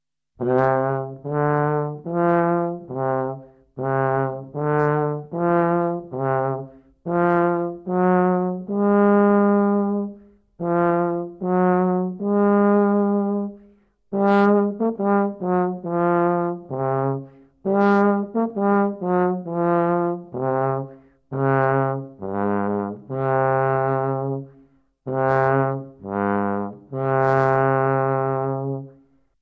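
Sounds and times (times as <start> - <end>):
tuba: 0.4 - 29.2.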